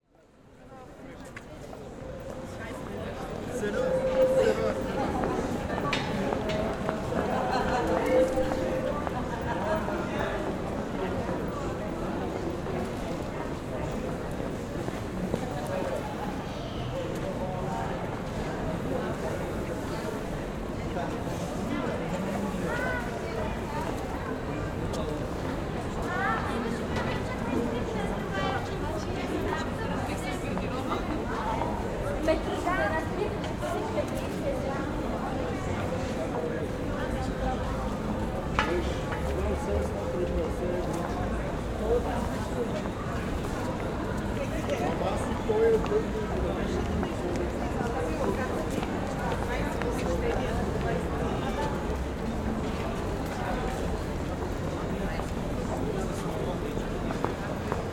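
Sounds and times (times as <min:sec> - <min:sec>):
busy city street ambience with pedestrians: 0:00.1 - 0:57.9.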